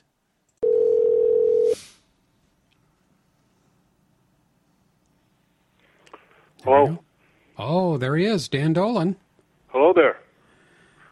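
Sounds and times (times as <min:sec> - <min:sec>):
electronic telephone ring tone before call connects: 0:00.6 - 0:01.8
speech: 0:06.6 - 0:09.2.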